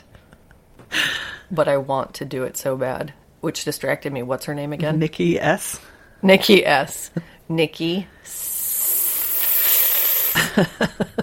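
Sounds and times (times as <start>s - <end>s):
speech: 1.5s - 8.5s, 10.6s - 11.2s
person imitating a snake's hiss: 8.3s - 10.5s.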